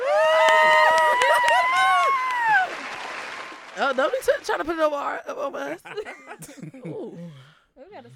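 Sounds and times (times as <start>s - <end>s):
crowd cheering with whoops and hollers: 0.0s - 4.6s
scattered clapping: 0.4s - 4.6s
speech: 3.9s - 7.2s.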